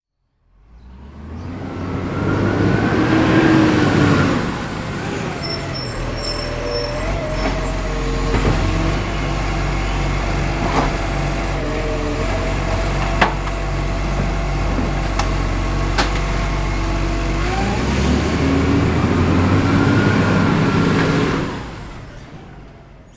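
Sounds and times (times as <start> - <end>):
garbage transport truck arriving: 0.5 - 23.1.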